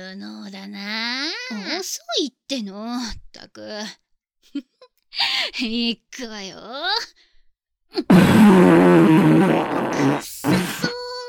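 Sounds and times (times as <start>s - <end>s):
speech: 0.1s - 7.3s, 7.9s - 10.9s
loud fart: 8.0s - 11.0s.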